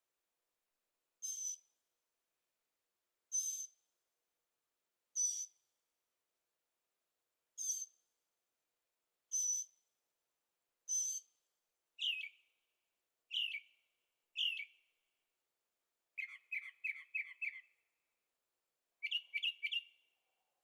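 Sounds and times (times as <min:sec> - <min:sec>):
birds singing at night in Carefree Arizona: 0:01.2 - 0:01.7, 0:03.3 - 0:03.8, 0:05.2 - 0:05.6, 0:09.3 - 0:09.8, 0:10.9 - 0:11.3, 0:12.0 - 0:12.4, 0:13.3 - 0:13.8, 0:14.4 - 0:14.8, 0:16.2 - 0:17.8, 0:19.0 - 0:20.1.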